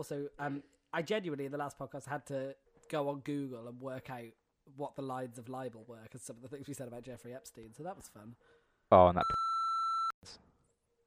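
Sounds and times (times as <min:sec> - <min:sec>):
speech: 0:00.0 - 0:09.4
steady sustained censor bleep tone: 0:09.1 - 0:10.2.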